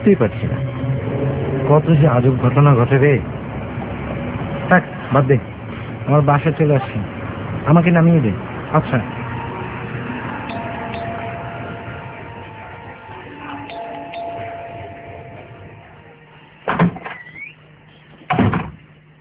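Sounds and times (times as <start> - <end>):
speech: 0.0 - 3.4, 4.7 - 5.5, 6.1 - 9.2
steady low hum: 0.0 - 19.1
door being opened after doorbell ring: 16.7 - 17.2.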